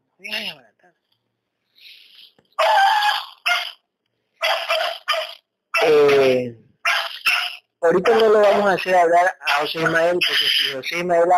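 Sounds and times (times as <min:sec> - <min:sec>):
speech: 0:00.2 - 0:00.7, 0:07.9 - 0:11.3
dog barking: 0:02.6 - 0:03.8, 0:04.4 - 0:08.6, 0:09.5 - 0:10.5.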